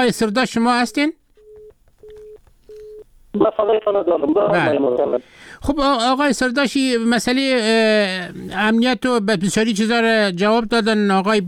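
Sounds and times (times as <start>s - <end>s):
speech: 0.0s - 1.2s, 3.4s - 11.4s
telephone disconnected-line tone beeps: 1.4s - 3.0s.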